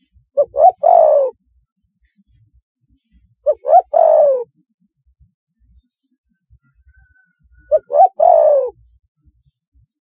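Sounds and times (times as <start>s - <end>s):
Spotted dove hooting and cooing: 0.4s - 1.4s, 3.4s - 4.6s, 6.9s - 8.9s.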